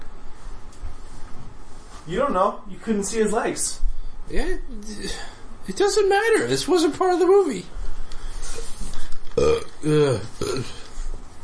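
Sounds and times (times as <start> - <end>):
speech: 2.1 - 7.8, 9.4 - 10.8
loud croaky burp: 9.4 - 10.9.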